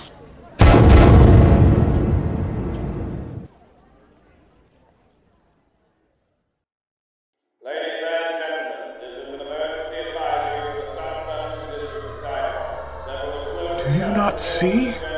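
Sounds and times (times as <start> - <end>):
heavy cannon boom: 0.6 - 3.5
speech: 14.4 - 15.0.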